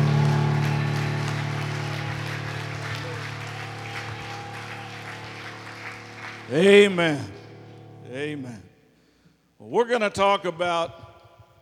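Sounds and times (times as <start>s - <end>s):
church service audience clapping in praise: 0.0s - 7.7s
sustained low organ-like tone: 0.0s - 8.6s
speech: 6.5s - 7.3s, 8.1s - 8.7s, 9.6s - 11.0s.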